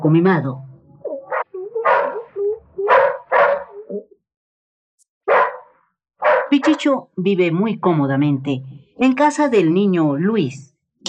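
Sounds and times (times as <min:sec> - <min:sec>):
speech: 0:00.0 - 0:00.7, 0:06.6 - 0:11.0
small dog barking and yipping: 0:01.3 - 0:04.0, 0:05.3 - 0:06.8.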